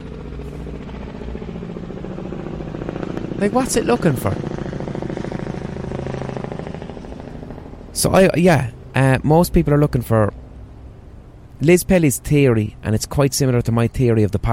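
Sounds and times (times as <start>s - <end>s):
helicopter circling overhead: 0.0s - 14.5s
speech: 3.4s - 4.6s, 8.0s - 10.4s, 11.6s - 14.5s.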